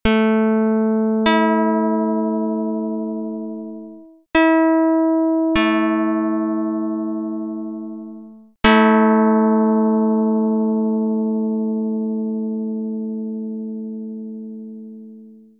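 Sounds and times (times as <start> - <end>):
synth pluck: 0.0 - 15.5.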